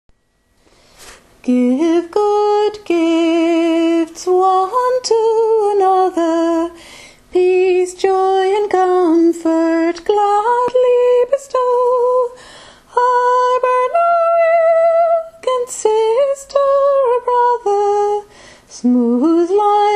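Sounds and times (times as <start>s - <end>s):
soprano voice: 1.4s - 19.9s.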